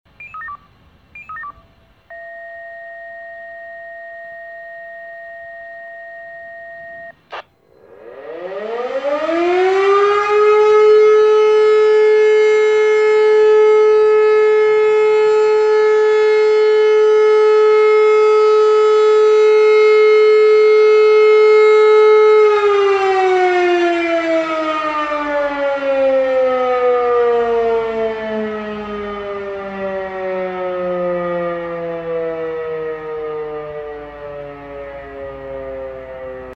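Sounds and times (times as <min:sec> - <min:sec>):
siren test: 0:00.2 - 0:36.5.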